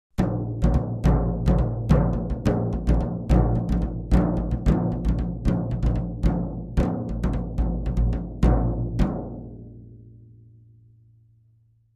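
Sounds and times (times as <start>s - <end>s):
tom drum rhythm: 0.1s - 9.6s.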